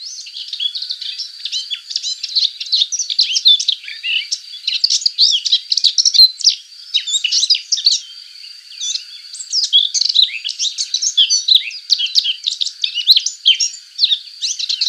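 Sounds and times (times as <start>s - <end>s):
subalpine warbler singing a hurried warble of dry twitters: 0.0s - 14.8s.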